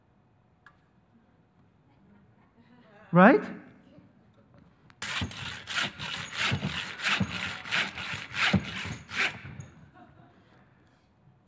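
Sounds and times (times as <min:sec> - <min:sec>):
speech: 0:03.1 - 0:03.6
hand saw cutting into a concrete block: 0:05.0 - 0:09.7.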